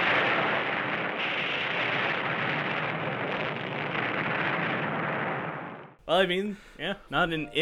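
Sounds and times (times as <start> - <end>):
continuous roar of explosions from an underground nuclear test: 0.0 - 6.0
speech: 6.1 - 7.6.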